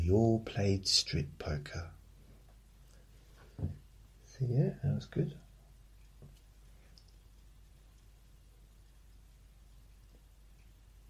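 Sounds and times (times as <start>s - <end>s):
speech: 0.0s - 2.0s, 3.6s - 3.8s, 4.4s - 5.4s
steady rain hiss: 0.0s - 11.0s
water dripping: 5.8s - 11.0s.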